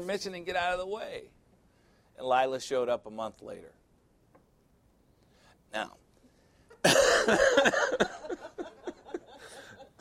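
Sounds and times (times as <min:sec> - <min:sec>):
speech: 0:00.0 - 0:01.4, 0:02.2 - 0:03.8, 0:05.7 - 0:06.0, 0:06.8 - 0:08.1
person coughing: 0:06.8 - 0:08.1
laughter: 0:06.8 - 0:09.9.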